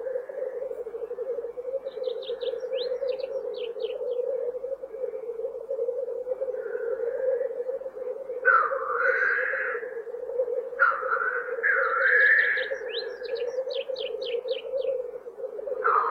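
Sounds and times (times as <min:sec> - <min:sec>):
black grouse steady low bubbling drone: 0:00.0 - 0:16.0.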